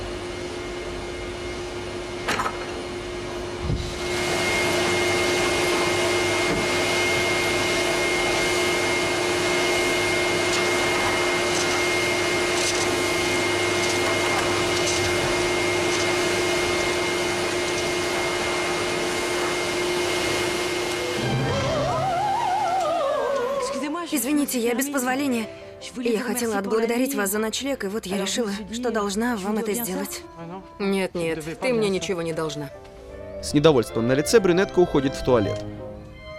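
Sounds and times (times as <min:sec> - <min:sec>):
vacuum cleaner cleaning an apartment: 0:00.0 - 0:26.6
speech: 0:24.5 - 0:35.8.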